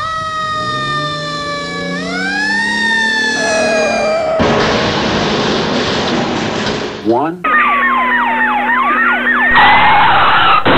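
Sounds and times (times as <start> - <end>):
fire engine siren wailing: 0.0 - 5.0, 7.5 - 10.6
rushing burst of broadband noise: 3.0 - 7.0.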